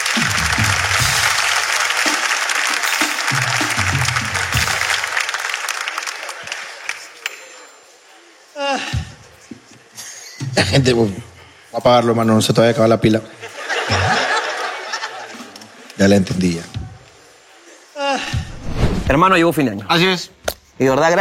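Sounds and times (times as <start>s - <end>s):
audience applause: 0.0s - 7.2s
speech: 10.6s - 14.0s, 16.0s - 16.8s, 19.1s - 21.2s
laughter: 13.3s - 16.0s.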